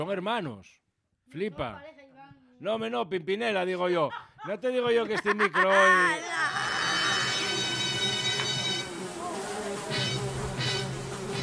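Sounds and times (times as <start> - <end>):
speech: 0.0 - 2.0, 2.6 - 6.6
laughter: 4.1 - 7.7
fly buzzing: 6.4 - 11.4.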